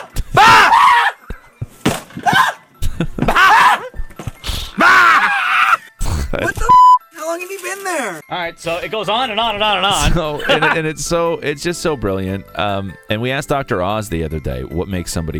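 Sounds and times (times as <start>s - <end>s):
man screaming and shrieking: 0.4s - 1.2s, 4.8s - 5.8s
sharp thumping impacts: 1.3s - 4.6s
laughter: 2.3s - 4.0s, 10.0s - 11.0s
speech: 7.8s - 15.3s.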